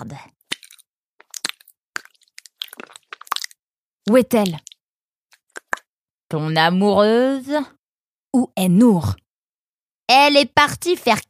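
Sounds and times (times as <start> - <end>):
speech: 0.0 - 0.4, 4.1 - 4.7, 6.3 - 7.8, 8.4 - 9.2, 10.1 - 11.2
chewing on a woody licorice root stick: 0.5 - 3.6.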